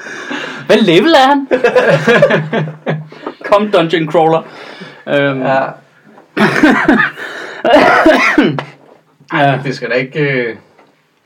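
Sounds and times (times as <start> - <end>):
speech: 0.7 - 5.8, 6.4 - 8.7, 9.3 - 10.7
laughter: 1.5 - 3.7, 6.4 - 8.3
harsh coughs into a sleeve: 7.7 - 8.8.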